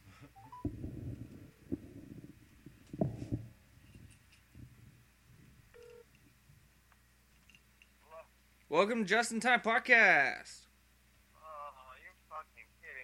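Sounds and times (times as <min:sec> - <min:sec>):
phone dialing tones as a phone call is placed: 0:00.4 - 0:00.7, 0:05.7 - 0:06.1
low rumbling: 0:00.6 - 0:05.7
speech: 0:08.8 - 0:10.6.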